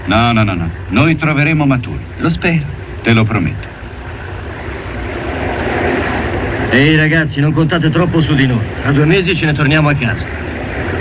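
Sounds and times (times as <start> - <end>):
engine running with a low rumble and rushing hiss: 0.0 - 10.9
speech: 0.1 - 3.8, 6.7 - 10.5.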